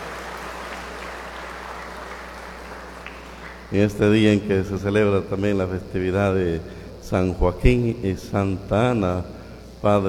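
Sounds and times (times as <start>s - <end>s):
crowd applauding: 0.0s - 3.8s
speech: 3.7s - 10.0s.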